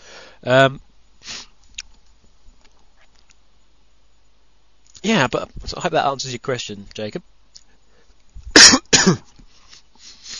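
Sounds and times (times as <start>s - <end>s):
faint low noise: 0.0s - 10.3s
speech: 0.4s - 0.9s, 5.2s - 7.3s, 9.1s - 9.3s
person coughing with phlegm on the chest: 8.5s - 9.3s.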